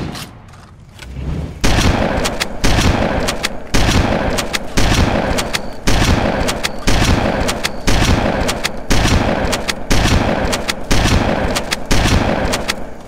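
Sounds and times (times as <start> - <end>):
weapon sounds: 0.1 - 13.0.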